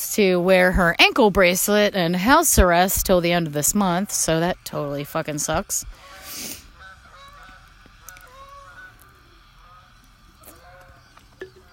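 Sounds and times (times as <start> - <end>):
speech: 0.0 - 6.1
faint rumble: 0.0 - 11.7
geese honking as they fly by: 3.0 - 11.7.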